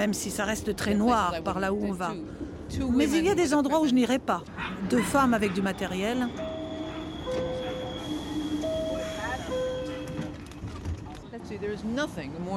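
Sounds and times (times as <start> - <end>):
speech: 0.0 - 6.5, 11.5 - 12.5
elevated subway train rumbling past: 0.0 - 12.5
high metallic whines of the subway train: 5.7 - 10.3
subway train wheel squeals: 6.0 - 10.4.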